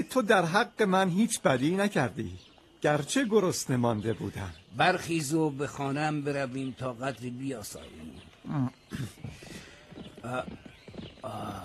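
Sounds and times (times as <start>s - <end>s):
speech: 0.1s - 9.2s, 10.2s - 11.6s
hooves of several horses carrying approaching riders clip-clopping: 9.1s - 11.6s.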